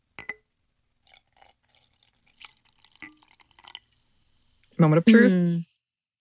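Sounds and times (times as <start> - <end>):
glass clink: 0.2 - 0.4, 3.0 - 3.8
bubbles crackling: 1.0 - 4.0
fizzy water with lemon pouring into a glass: 1.0 - 4.6
speech: 4.8 - 5.7.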